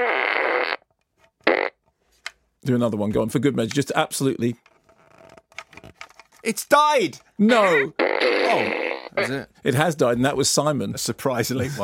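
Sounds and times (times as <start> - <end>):
fart gun sound effect: 0.0 - 0.8, 8.0 - 9.3
speech: 2.6 - 4.7, 6.5 - 11.8.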